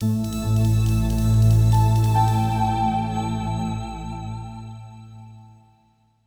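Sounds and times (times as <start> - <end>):
space pad on keys: 0.0 - 5.7.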